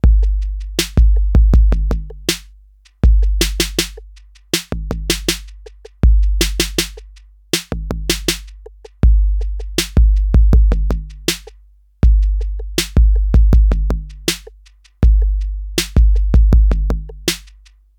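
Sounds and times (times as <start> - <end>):
TR808 drum machine: 0.0 - 17.8.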